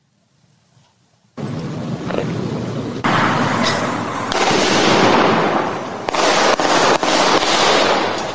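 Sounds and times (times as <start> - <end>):
rushing outdoor noise: 0.9 - 8.3
gunshots recorded on street surveillance video: 3.0 - 8.3.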